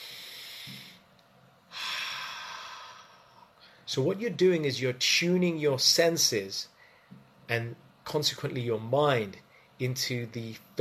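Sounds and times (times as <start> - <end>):
breathy exhales through an open mouth: 0.0 - 1.0, 1.7 - 3.8
speech: 3.9 - 6.7, 7.5 - 10.7.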